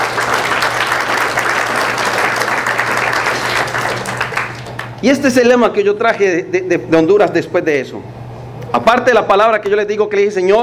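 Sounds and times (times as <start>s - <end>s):
large audience applauding: 0.0s - 5.1s
speech: 5.0s - 10.6s.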